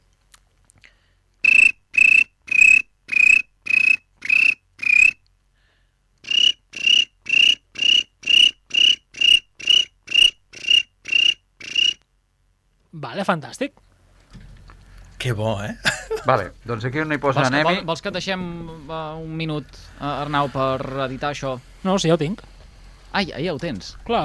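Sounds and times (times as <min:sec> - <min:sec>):
voice imitating cricket chirping: 0:01.4 - 0:05.2, 0:06.2 - 0:12.0
speech: 0:13.1 - 0:13.8, 0:15.2 - 0:22.5, 0:23.1 - 0:24.2
laughter: 0:15.8 - 0:16.5.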